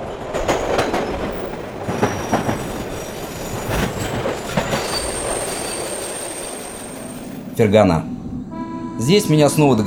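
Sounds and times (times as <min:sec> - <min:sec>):
rhythmic wheel clatter of railway cars rolling along tracks: 0:00.0 - 0:08.0
constant rumbling drone of a rolling train: 0:00.0 - 0:09.8
bumps of rolling railway cars: 0:00.4 - 0:06.4
faint high-pitched train wheel squeal: 0:00.5 - 0:09.3
speech: 0:07.6 - 0:08.2, 0:09.0 - 0:09.8.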